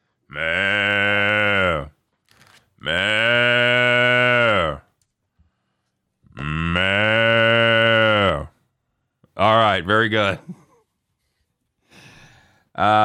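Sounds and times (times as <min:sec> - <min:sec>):
cow mooing: 0:00.3 - 0:01.9, 0:02.8 - 0:04.8, 0:06.3 - 0:08.5
speech: 0:09.9 - 0:10.6, 0:12.8 - 0:13.0.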